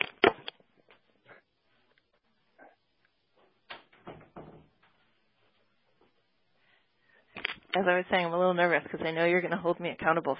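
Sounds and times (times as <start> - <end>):
door knocks and rattles as it settles: 3.9 - 4.8
speech: 7.8 - 10.3.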